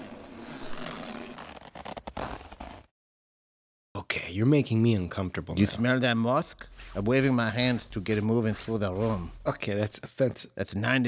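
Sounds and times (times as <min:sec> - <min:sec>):
jumpsuit zipper being pulled down: 0:00.0 - 0:02.9
speech: 0:04.2 - 0:11.0.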